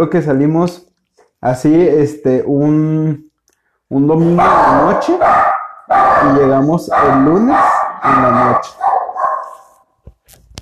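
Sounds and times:
speech: 0.0s - 3.3s, 3.9s - 9.0s
small dog barking and yipping: 4.2s - 9.8s.

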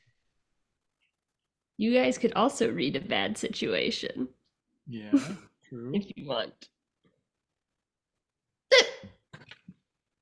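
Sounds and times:
speech: 1.8s - 6.8s
person hiccuping: 8.7s - 9.2s.

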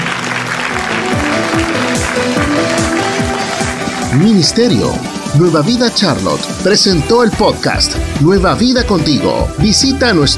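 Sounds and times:
large church audience applauding: 0.0s - 5.6s
speech: 4.1s - 10.3s.

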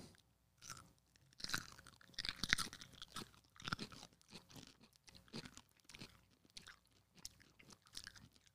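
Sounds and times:
wet crunchy chewing of a pickle: 0.0s - 8.5s
crunchy bite into a pickle: 0.6s - 8.5s.

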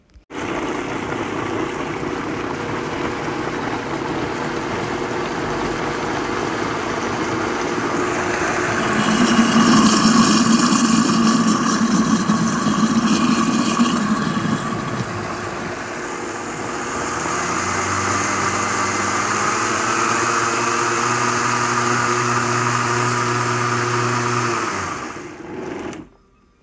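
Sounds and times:
blender running: 0.3s - 26.1s.

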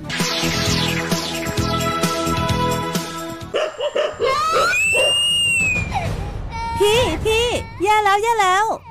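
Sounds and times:
music: 0.0s - 8.8s
dog barking in quick sharp bursts: 3.5s - 4.3s
child's loud high-pitched rising scream as the dog bites: 4.2s - 5.8s, 6.5s - 8.0s
speech: 8.2s - 8.8s.

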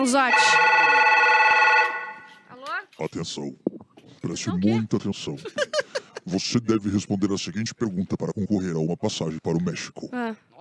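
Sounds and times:
speech: 0.0s - 0.8s, 3.0s - 3.6s, 4.2s - 10.6s
telephone ringing with an electronic trill: 0.0s - 2.4s
laughter: 5.2s - 6.8s.

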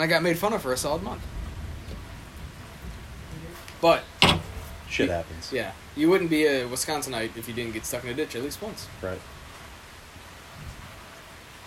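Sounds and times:
speech: 0.0s - 1.4s, 3.8s - 4.1s, 4.9s - 9.4s
rain falling: 0.0s - 11.6s.

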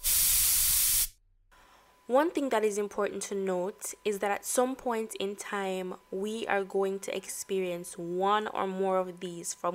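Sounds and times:
aerosol spray can hissing: 0.0s - 1.2s
speech: 2.1s - 9.7s.

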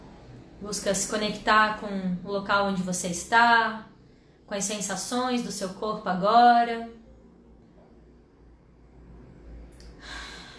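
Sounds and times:
quiet low hum: 0.0s - 10.5s
speech: 0.6s - 3.9s, 4.5s - 7.0s
deep breath in and out: 4.0s - 4.5s, 9.8s - 10.5s.

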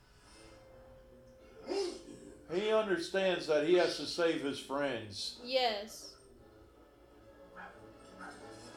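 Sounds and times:
speech: 2.5s - 6.1s
dog barking: 7.5s - 8.6s.

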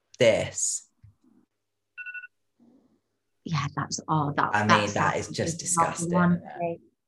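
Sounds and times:
speech: 0.2s - 0.8s, 3.5s - 6.9s
electronic phone alarm tone of gentle chimes: 2.0s - 2.3s.

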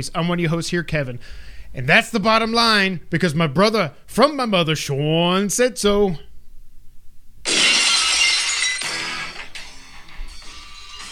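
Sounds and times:
speech: 0.0s - 6.3s
tinkling and clinking glass shards settling: 7.5s - 9.4s
glass shattering: 7.5s - 11.1s.

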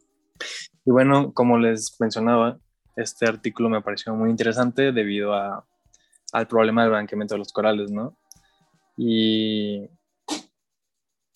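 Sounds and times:
speech: 0.8s - 5.7s, 6.3s - 8.2s, 9.0s - 10.0s
cat sneezing: 10.3s - 10.5s.

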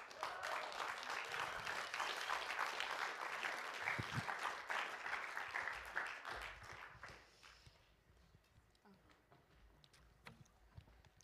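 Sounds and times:
audience applause: 0.0s - 7.5s.

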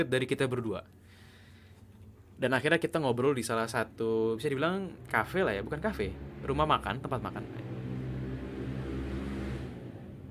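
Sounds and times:
speech: 0.0s - 1.0s, 2.4s - 7.7s
motorcycle engine revving passing by: 4.9s - 10.2s.

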